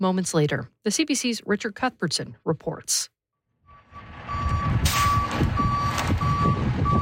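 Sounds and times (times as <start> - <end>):
speech: 0.0 - 3.2
loud rumbling tow truck diesel engine: 3.7 - 7.0
tow truck reversal alarm beeping: 3.7 - 7.0.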